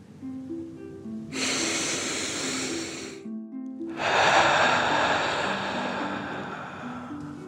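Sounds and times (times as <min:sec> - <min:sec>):
soft gentle music: 0:00.0 - 0:07.4
deep inhale through the nose: 0:01.3 - 0:03.3, 0:03.9 - 0:07.4
strong rushing exhale out the mouth: 0:01.4 - 0:03.2, 0:03.9 - 0:07.4.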